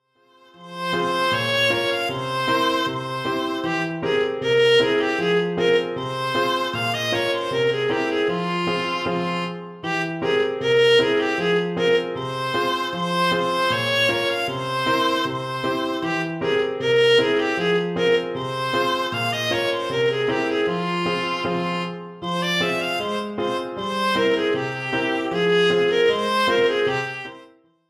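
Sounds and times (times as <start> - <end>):
gavotte in F minor for viola and piano: 0.2 - 27.6.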